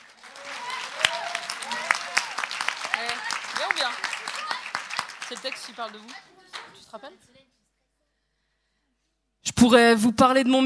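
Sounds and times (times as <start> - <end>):
audience applauding: 0.0 - 6.6
speech: 3.7 - 4.1, 5.3 - 6.3, 6.9 - 7.4, 9.4 - 10.6.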